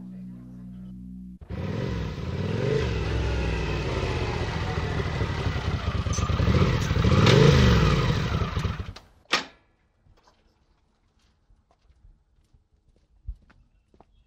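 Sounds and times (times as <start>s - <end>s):
motorcycle pulling up outside a house in the evening, engine revving: 1.4s - 9.0s.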